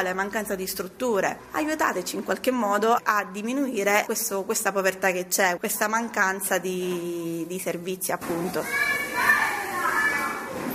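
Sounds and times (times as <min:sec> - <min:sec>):
speech: 0:00.0 - 0:09.4
children chattering and calling out at a Christmas play: 0:08.5 - 0:10.7.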